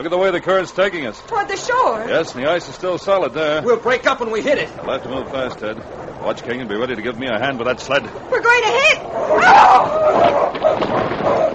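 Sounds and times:
speech: 0:00.0 - 0:11.5
sled dogs barking and yipping: 0:09.1 - 0:11.5.

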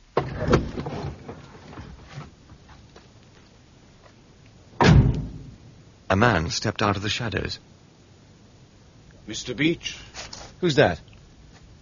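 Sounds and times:
car door clicking and creaking open: 0:00.2 - 0:02.2
quiet rustling: 0:00.3 - 0:05.7, 0:09.0 - 0:11.8
car door shutting with a loud solid thud: 0:04.8 - 0:05.5
speech: 0:06.1 - 0:07.7, 0:09.3 - 0:11.1.

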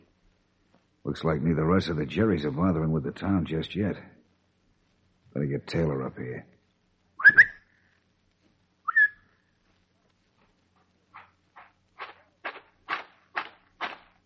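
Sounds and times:
speech: 0:01.0 - 0:04.2, 0:05.3 - 0:06.5
person whistling: 0:07.2 - 0:07.6, 0:08.9 - 0:09.2
footsteps: 0:09.7 - 0:14.2.

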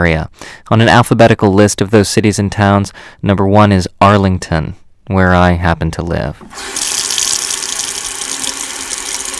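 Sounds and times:
speech: 0:00.0 - 0:06.8
reservoir tap water pouring from a household faucet in Massachusetts: 0:06.5 - 0:09.3.

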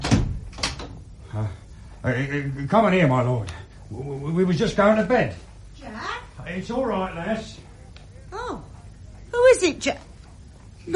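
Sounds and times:
wooden door being opened in a house at night: 0:00.0 - 0:01.0
speech: 0:01.4 - 0:07.7, 0:09.5 - 0:10.1.

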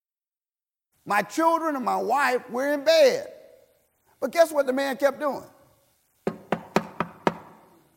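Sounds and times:
speech: 0:01.0 - 0:03.4, 0:04.2 - 0:05.6
knocks on a hard surface: 0:06.2 - 0:07.6.

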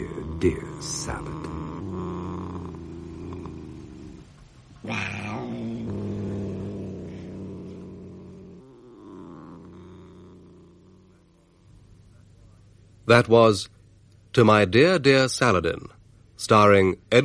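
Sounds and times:
speech: 0:00.0 - 0:01.5, 0:04.8 - 0:05.2, 0:13.1 - 0:17.2
cat purring: 0:00.0 - 0:12.6.

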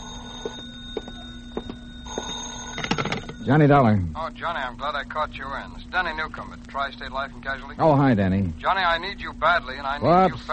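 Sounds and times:
old-fashioned telephone bell ringing: 0:00.0 - 0:03.9
speech: 0:00.4 - 0:00.7, 0:03.4 - 0:10.5.

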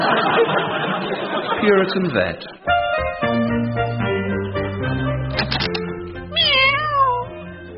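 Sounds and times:
laughter: 0:00.0 - 0:02.7
speech: 0:01.6 - 0:02.7
instrumental music: 0:02.6 - 0:07.7
cat meowing: 0:06.3 - 0:07.4.

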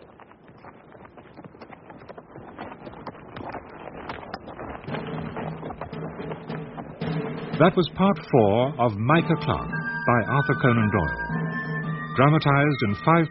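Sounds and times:
horse hooves as a rider goes slowly away: 0:00.0 - 0:08.9
speech: 0:07.6 - 0:11.3, 0:12.2 - 0:13.2.

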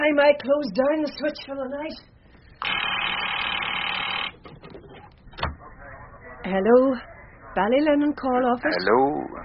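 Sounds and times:
speech: 0:00.1 - 0:02.8, 0:06.4 - 0:09.4
telephone ringing: 0:02.6 - 0:04.4.

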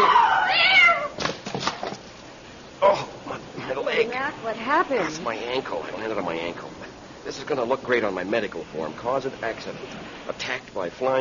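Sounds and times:
cat meowing: 0:00.0 - 0:01.2
speech: 0:04.6 - 0:11.1.

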